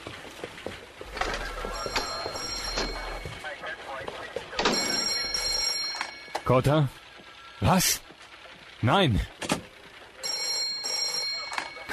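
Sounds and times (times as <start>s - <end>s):
telephone ringing in a cluttered police inspector's office: 1.1s - 3.5s, 4.4s - 6.6s, 10.2s - 11.9s
speech: 6.5s - 7.0s, 7.6s - 8.1s, 8.8s - 9.4s.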